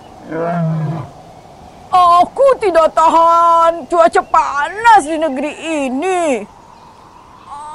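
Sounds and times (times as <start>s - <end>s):
lion roaring: 0.2s - 1.2s
speech: 0.3s - 1.2s, 2.6s - 6.6s.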